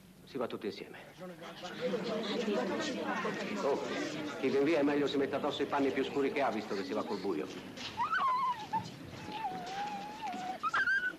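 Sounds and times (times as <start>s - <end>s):
speech: 0.3s - 8.0s
dog whimpering: 7.8s - 11.1s.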